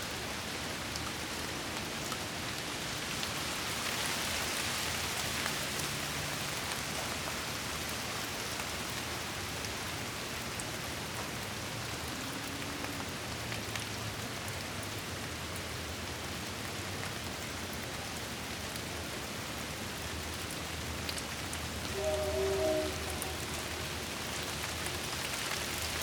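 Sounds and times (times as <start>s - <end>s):
light rain pattering in a backyard: 0.0s - 26.0s
faint low tone: 22.0s - 23.9s.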